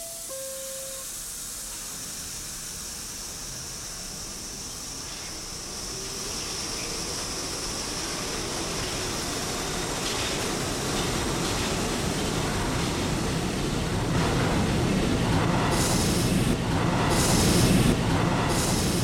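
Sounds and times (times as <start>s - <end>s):
high-pitched hissing bursts of subway train: 0.0s - 7.6s
subway train rumbling along rails: 0.0s - 19.0s.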